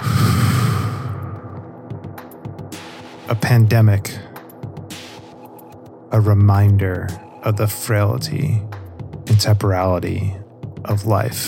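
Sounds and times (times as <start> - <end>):
deep breath in and out: 0.0 - 1.7
speech: 3.3 - 4.3, 6.1 - 11.4.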